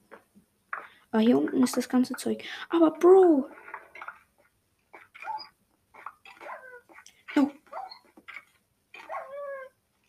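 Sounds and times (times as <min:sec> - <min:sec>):
speech: 0:01.1 - 0:03.6
dog yipping: 0:05.0 - 0:07.0, 0:07.6 - 0:09.7
dog whimpering: 0:05.2 - 0:08.2, 0:09.0 - 0:09.8.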